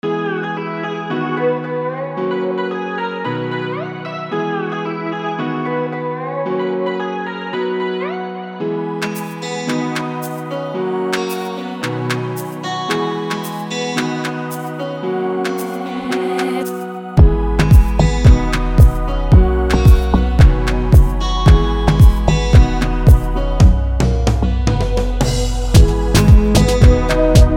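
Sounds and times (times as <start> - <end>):
rhythmic beat: 9.0 - 10.5, 11.1 - 14.8, 15.4 - 27.5.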